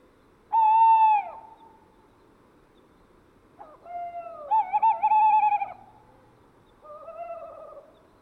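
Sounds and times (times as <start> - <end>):
male tawny owl hooting during courtship: 0.5 - 1.8, 3.6 - 5.9, 6.8 - 8.0.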